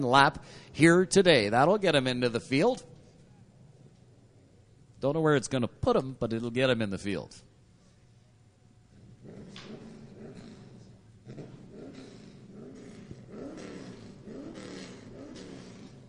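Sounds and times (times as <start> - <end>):
speech: 0.0 - 2.9, 5.0 - 7.5
Sportsman Division race car engine revving at a speedway: 11.4 - 16.0.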